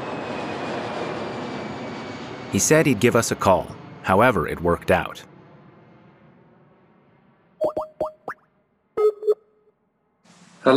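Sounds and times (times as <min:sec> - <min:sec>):
airplane engines roaring overhead with a faint high whine: 0:00.0 - 0:08.2
speech: 0:02.5 - 0:05.3.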